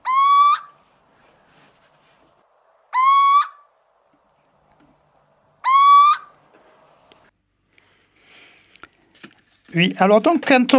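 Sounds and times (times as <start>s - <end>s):
owl hooting call played back as a lure: 0.0s - 0.8s, 2.9s - 3.7s, 5.6s - 6.4s
speech: 9.7s - 10.7s.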